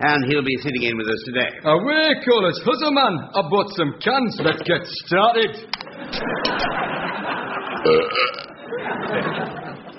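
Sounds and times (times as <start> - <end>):
speech: 0.0 - 6.8, 7.8 - 9.5
laughter: 4.4 - 4.9, 5.8 - 9.9
loud belch: 7.8 - 8.6.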